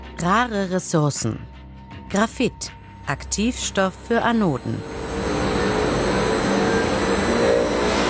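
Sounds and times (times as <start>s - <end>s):
speech: 0.2s - 1.6s, 2.1s - 5.0s
battery recycling plant machinery roaring and whining in a pilot-plant hall in Braunschweig: 4.6s - 8.0s.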